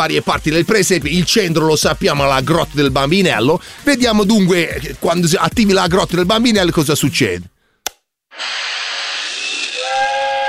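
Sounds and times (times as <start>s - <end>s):
speech: 0.0s - 7.5s
steam train whistle: 9.6s - 10.4s.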